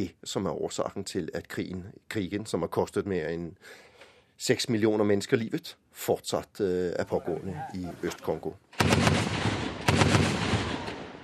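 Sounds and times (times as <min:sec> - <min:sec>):
speech: 0:00.0 - 0:09.3
gunfire as soldiers shoot at a militia group: 0:08.8 - 0:11.2.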